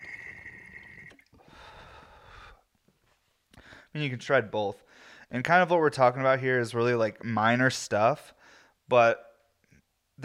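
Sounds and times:
thin steady whistling tone: 0:00.0 - 0:01.3
water bubbling through a smoking rig during an inhaled pull: 0:00.0 - 0:01.3
speech: 0:03.9 - 0:09.3.

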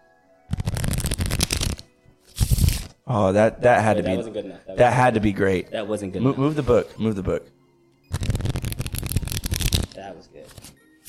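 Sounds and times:
riffle of playing cards being shuffled: 0:00.5 - 0:03.0, 0:08.1 - 0:11.0
speech: 0:03.1 - 0:07.6.

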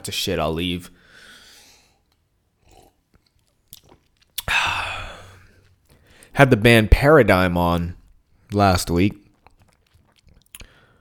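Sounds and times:
speech: 0:00.0 - 0:01.0, 0:06.4 - 0:09.2
soft mouth and handling noises: 0:02.0 - 0:06.3, 0:09.2 - 0:10.8.

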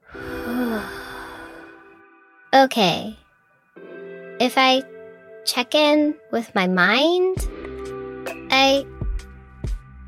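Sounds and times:
deep breath in and out: 0:00.0 - 0:02.2
speech: 0:02.6 - 0:03.2, 0:04.4 - 0:07.5, 0:08.6 - 0:08.9.

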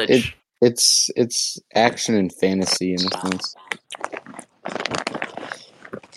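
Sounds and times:
speech: 0:00.0 - 0:04.1
person chewing crispy snack chips: 0:03.6 - 0:06.1.

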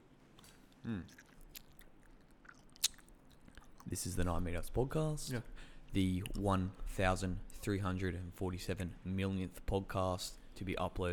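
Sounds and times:
sharp crunchy mouth clicks: 0:00.4 - 0:03.9
chewing at the microphone: 0:00.4 - 0:04.3
speech: 0:00.8 - 0:01.3, 0:03.9 - 0:11.1.

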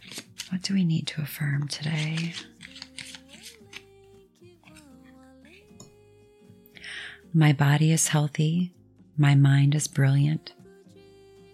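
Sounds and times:
playing cards being shuffled: 0:00.0 - 0:00.7, 0:01.5 - 0:03.9
speech: 0:00.5 - 0:02.5, 0:07.4 - 0:10.6.

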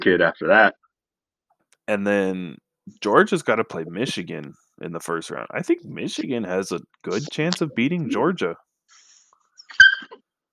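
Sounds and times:
speech: 0:00.0 - 0:00.8, 0:01.9 - 0:09.0
puppy yips: 0:09.6 - 0:10.2.

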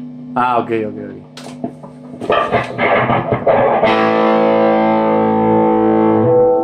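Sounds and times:
speech: 0:00.4 - 0:01.3, 0:02.3 - 0:04.3
clean-tone electric guitar with reverb from a pedal in the effects loop: 0:02.1 - 0:06.6.

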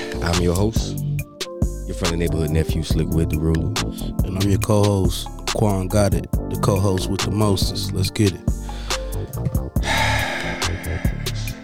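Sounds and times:
loud heavy breathing with sharp gasps and snorting breaths: 0:00.0 - 0:00.2, 0:08.5 - 0:11.6
speech: 0:00.2 - 0:01.0, 0:01.9 - 0:09.6.

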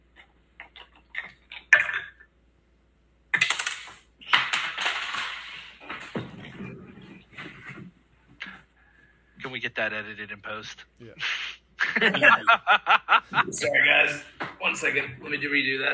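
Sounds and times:
two ten-sided dice rolling on a hard surface: 0:03.4 - 0:06.2
speech: 0:09.5 - 0:11.4, 0:12.0 - 0:15.9
laughter: 0:11.2 - 0:14.1.

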